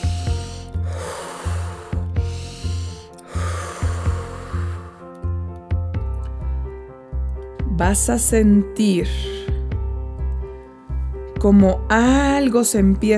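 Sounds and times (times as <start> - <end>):
forceful powerful breaths during a breathing exercise: 0.0 - 5.4
soft sustained music: 0.0 - 13.1
speech: 7.8 - 9.3, 11.4 - 13.1.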